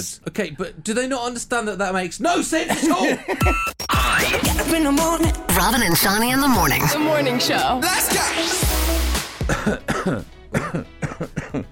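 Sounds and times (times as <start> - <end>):
speech: 0.0 - 8.8, 9.5 - 10.9
short throaty coughs: 9.4 - 11.6.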